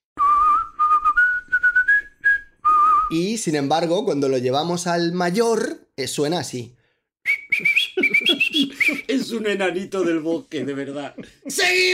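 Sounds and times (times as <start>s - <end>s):
person whistling a tune: 0.2s - 3.1s, 7.2s - 9.1s
speech: 3.1s - 7.8s, 8.6s - 11.9s
laughter: 7.6s - 11.9s.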